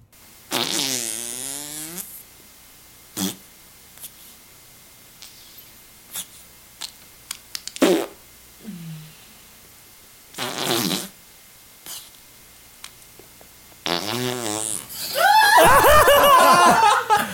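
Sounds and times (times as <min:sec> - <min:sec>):
vaginal flatulence bursts from a played video through a speaker: 0:00.2 - 0:02.4, 0:03.1 - 0:04.4, 0:07.7 - 0:08.7, 0:10.3 - 0:11.2, 0:11.8 - 0:12.2, 0:13.8 - 0:16.6
clicks: 0:06.8 - 0:07.8
people snickering and laughing: 0:15.1 - 0:17.3.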